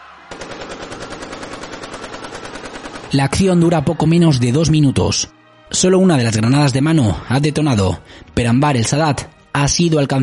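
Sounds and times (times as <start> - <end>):
rapid automatic gunfire at a military parade: 0.3 - 3.7
speech: 3.1 - 10.2.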